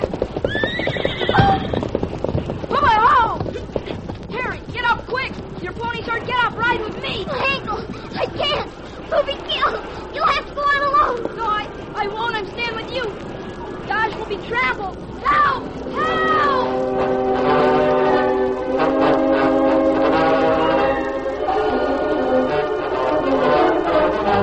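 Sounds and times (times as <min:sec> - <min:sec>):
clatter of hooves of ponies and stampeding cattle: 0:00.0 - 0:14.3
ponies fleeing a stampeding cattle herd whinnying: 0:00.4 - 0:02.0
people shouting and talking: 0:04.3 - 0:24.4.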